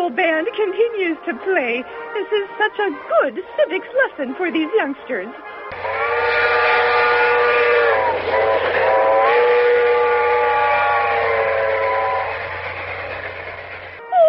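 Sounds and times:
speech: 0:00.1 - 0:05.9
multi-tone train whistle blast as the train pulls into a depot: 0:05.7 - 0:14.1.

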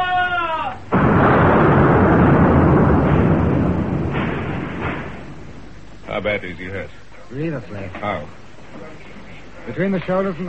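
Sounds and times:
dull booms: 0:00.8 - 0:06.1
guns firing aboard a sailing warship: 0:00.9 - 0:05.8
speech: 0:06.2 - 0:09.0, 0:09.6 - 0:10.4.

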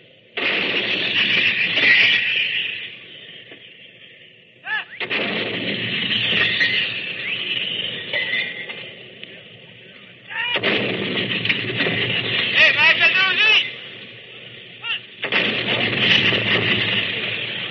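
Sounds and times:
75-millimeter field gun fired by a British gun crew: 0:00.4 - 0:02.4, 0:04.9 - 0:08.0, 0:10.4 - 0:17.6.

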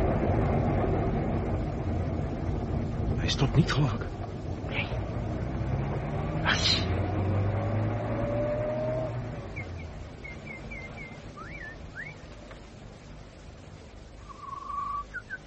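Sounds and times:
car engine rumbling on the road: 0:00.0 - 0:15.4
speech: 0:03.3 - 0:04.2
birds chirping and whistling: 0:06.5 - 0:07.0, 0:09.5 - 0:12.3, 0:14.2 - 0:15.4.

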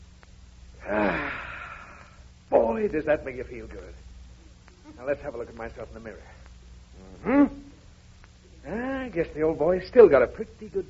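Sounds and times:
man inhaling deeply during early-morning setting-up exercises: 0:00.8 - 0:02.3
speech: 0:02.8 - 0:04.1, 0:04.9 - 0:06.4, 0:07.0 - 0:07.7, 0:08.6 - 0:10.8.

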